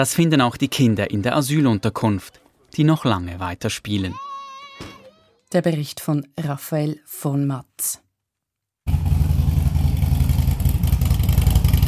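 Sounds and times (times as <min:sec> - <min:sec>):
speech: 0:00.0 - 0:08.0
Harley-Davidson motorcycle engine idling: 0:08.9 - 0:11.8.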